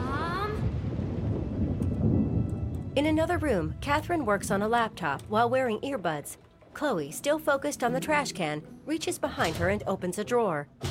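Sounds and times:
thunder rolling after a lightning flash: 0.0 - 6.6
speech: 3.0 - 10.8.

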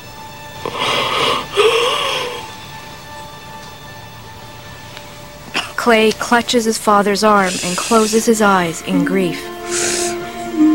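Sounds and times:
dying man's final breath, a long wheezing rasp: 0.6 - 2.5, 9.6 - 10.6
speech: 5.8 - 9.8.

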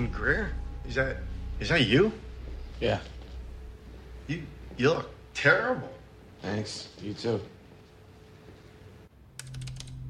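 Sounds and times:
speech: 0.0 - 2.2, 2.8 - 3.2, 4.3 - 7.6
low steady hum: 0.0 - 10.0
computer keyboard typing at a desk: 9.3 - 10.0.

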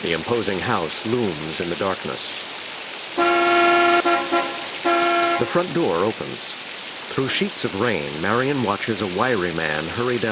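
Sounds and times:
speech: 0.0 - 2.6, 5.4 - 10.3
low hiss: 0.0 - 10.3
car horn honking outside a house at night in the rain: 3.2 - 5.6.

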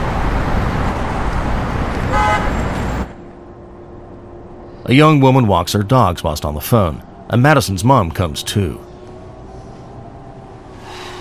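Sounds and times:
street traffic roar of passing vehicles in daylight: 0.0 - 11.1
brief higher horn-like toot: 2.1 - 2.6
speech: 4.9 - 8.9.

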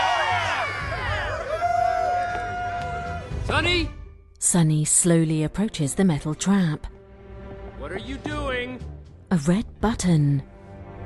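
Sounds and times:
many overlapping voices whooping and shouting: 0.0 - 3.3
crowd cheering: 0.0 - 3.7
speech: 3.5 - 6.9, 7.8 - 10.5.

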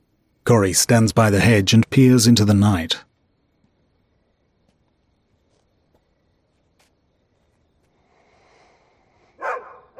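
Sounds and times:
faint steady noise: 0.0 - 9.9
speech: 0.5 - 3.1
white dog barking across a road at night: 9.4 - 9.9.

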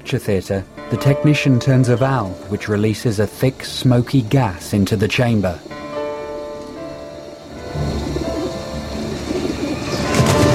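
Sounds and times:
speech: 0.1 - 5.7
panicked pigeons cooing: 7.6 - 10.5
pigeons flapping wings: 9.2 - 10.5.

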